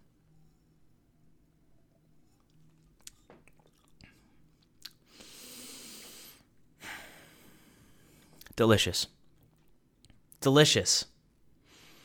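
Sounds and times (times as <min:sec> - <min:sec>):
person sipping bourbon whiskey: 0:02.2 - 0:06.4
small wet mouth clicks: 0:02.4 - 0:05.0
long breathy exhale: 0:05.1 - 0:08.2
speech: 0:08.6 - 0:09.2, 0:10.4 - 0:11.1.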